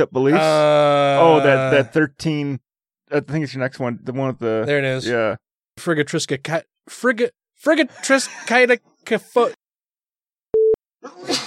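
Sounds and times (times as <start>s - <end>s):
speech: 0.0s - 9.6s
short steady electronic beep: 10.6s - 10.8s
person sneezing: 11.0s - 11.4s.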